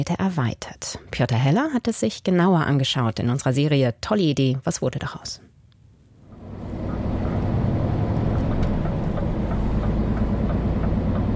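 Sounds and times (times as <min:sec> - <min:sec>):
speech: 0:00.0 - 0:05.6
broad road noise: 0:06.1 - 0:11.3
heavy diesel truck engine droning on a motorway: 0:06.2 - 0:11.3.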